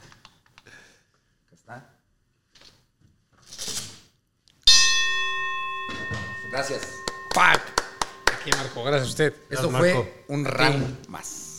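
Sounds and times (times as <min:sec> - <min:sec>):
speech: 0:01.7 - 0:02.0, 0:05.9 - 0:07.8, 0:08.4 - 0:11.5
single loud strike of a bell: 0:04.7 - 0:10.5.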